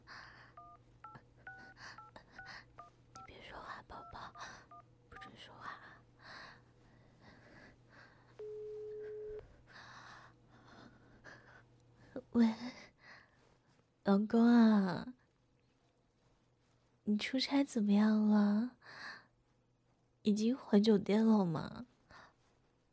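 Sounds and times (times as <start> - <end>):
telephone keypad dialing tones: 0.6 - 3.3, 8.4 - 9.4
speech: 14.1 - 15.2, 17.1 - 19.0, 20.2 - 21.9.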